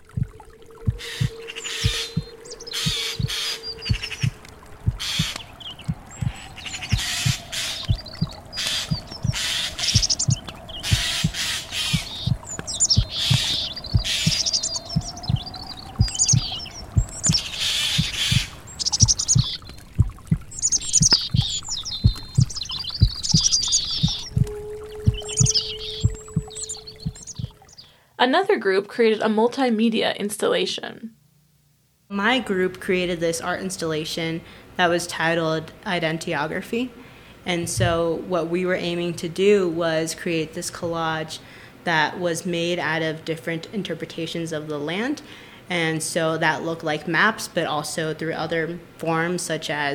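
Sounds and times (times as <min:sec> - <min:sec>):
steady rhythmic heartbeat thumping: 0:00.0 - 0:27.8, 0:37.6 - 0:38.1
bright birdsong with chirps and tweets: 0:00.0 - 0:28.0
soft sustained hum: 0:00.0 - 0:28.0
speech: 0:28.3 - 0:31.2, 0:32.2 - 0:49.9.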